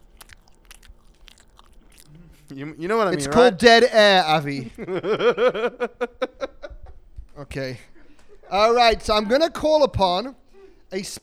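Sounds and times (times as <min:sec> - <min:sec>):
biting and chewing an iced donut: 0:00.0 - 0:03.4
speech: 0:02.5 - 0:06.4, 0:07.4 - 0:11.2
laughter: 0:04.4 - 0:07.1.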